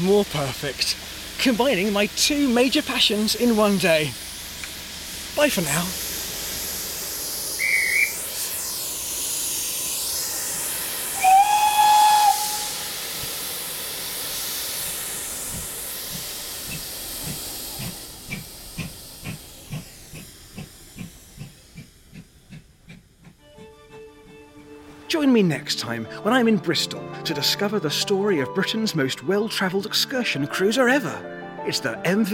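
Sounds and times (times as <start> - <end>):
speech: 0.0 - 4.3, 5.4 - 6.0, 25.4 - 32.3
steam locomotive hissing: 0.0 - 26.4
steam locomotive whistle blasts: 7.5 - 9.0, 11.1 - 13.1.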